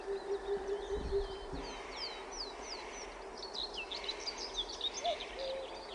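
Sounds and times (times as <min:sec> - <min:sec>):
oriental cuckoo calling: 0:00.0 - 0:01.8, 0:05.0 - 0:05.9
songbirds chirping and trilling: 0:00.0 - 0:05.9.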